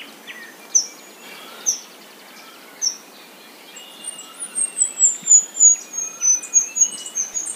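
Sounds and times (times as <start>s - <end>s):
bluish flowerpiercer song of high chips and thin twittering: 0.0s - 7.5s
faint lower chirps: 3.8s - 7.5s.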